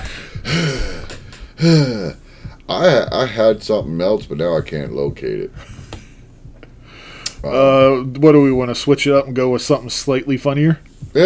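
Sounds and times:
heavy raspy breathing in the background: 0:00.0 - 0:02.7, 0:05.6 - 0:07.5
speech: 0:01.6 - 0:05.7, 0:07.4 - 0:11.2.

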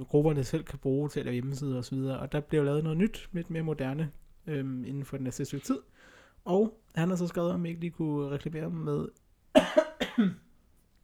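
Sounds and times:
speech: 0:00.0 - 0:10.4
harsh coughs: 0:09.6 - 0:10.5.

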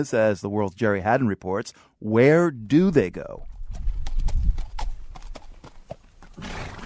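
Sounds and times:
speech: 0:00.0 - 0:03.5
horses' hooves clip-clopping as they are led to stalls at a riding school outside Barcelona: 0:03.5 - 0:06.8.

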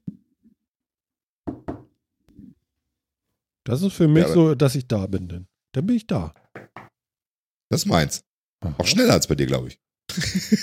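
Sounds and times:
sharp knocks on a hard surface: 0:01.5 - 0:01.9, 0:06.5 - 0:06.9
speech: 0:03.7 - 0:06.4, 0:07.7 - 0:10.6
laughter: 0:10.1 - 0:10.6.

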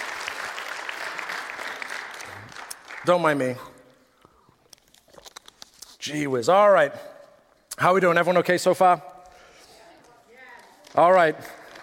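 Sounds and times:
crowd clapping and applauding: 0:00.0 - 0:03.6, 0:10.9 - 0:11.8
speech: 0:03.0 - 0:03.7, 0:06.0 - 0:07.1, 0:07.8 - 0:09.1, 0:11.0 - 0:11.6.

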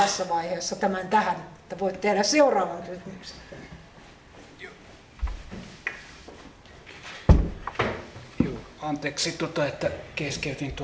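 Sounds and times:
speech: 0:00.0 - 0:03.7, 0:08.8 - 0:10.8
door shutting with a solid thud: 0:07.2 - 0:08.1.

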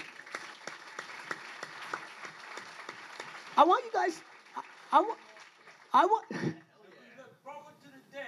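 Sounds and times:
crowd applauding steadily: 0:00.0 - 0:07.1
speech: 0:03.6 - 0:05.3, 0:06.0 - 0:06.6.

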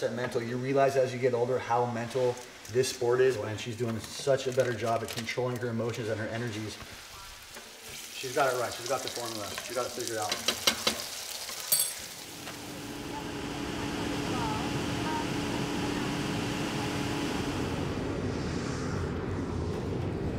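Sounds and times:
speech: 0:00.0 - 0:07.0, 0:08.2 - 0:10.9
aircraft engine roar in flight on a sightseeing tour to the Grand Canyon: 0:12.2 - 0:20.3.

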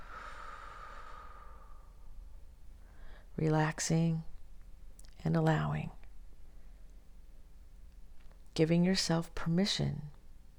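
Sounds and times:
slow deep breathing: 0:00.0 - 0:02.1, 0:02.8 - 0:03.3
speech: 0:03.4 - 0:04.3, 0:05.2 - 0:06.0, 0:08.6 - 0:10.2.

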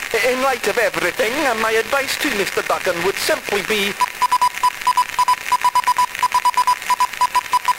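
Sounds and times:
faint static hiss: 0:00.0 - 0:07.7
speech: 0:00.2 - 0:04.1
Morse code beeps in a single high tone: 0:04.0 - 0:07.7.

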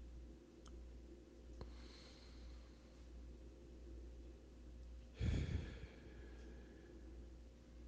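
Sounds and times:
steady low hiss: 0:00.0 - 0:07.8
airy exhale after a deep breath: 0:05.2 - 0:06.6.

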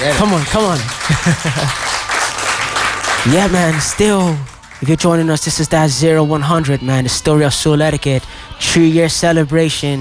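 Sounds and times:
speech: 0:00.0 - 0:01.9, 0:03.2 - 0:09.9
crowd applauding: 0:00.0 - 0:05.3
laughter: 0:00.8 - 0:02.1.

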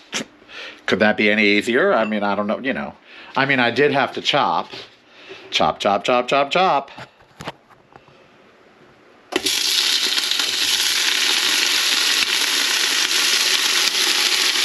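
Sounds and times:
speech: 0:00.9 - 0:04.9, 0:05.5 - 0:07.1
tofu frying in a pan: 0:09.4 - 0:14.6.

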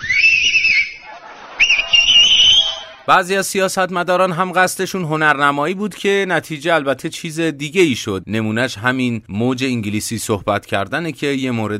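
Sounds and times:
young man whistling loudly with fingers in mouth: 0:00.0 - 0:01.0, 0:01.6 - 0:03.0
laughter: 0:01.0 - 0:03.0
speech: 0:03.1 - 0:11.7.

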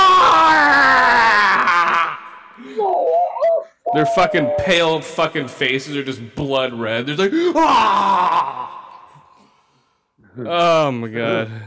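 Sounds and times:
voice imitating a man and his wife screaming: 0:00.0 - 0:05.1, 0:07.6 - 0:09.0
speech: 0:03.9 - 0:08.8, 0:10.4 - 0:11.6.

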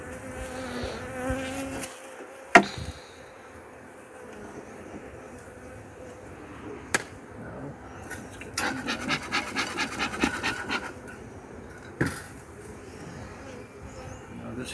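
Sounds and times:
honeybees buzzing in a nucleus colony: 0:00.0 - 0:14.7
sharp knocks: 0:02.5 - 0:02.9.

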